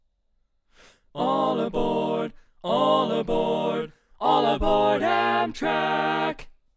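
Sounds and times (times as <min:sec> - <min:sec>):
tenor singing barbershop: 0:01.2 - 0:06.5.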